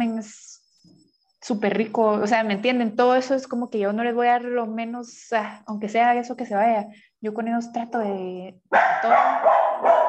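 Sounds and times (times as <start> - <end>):
speech: 0.2 - 0.4, 1.4 - 10.0
several dogs barking and yapping: 8.7 - 10.0.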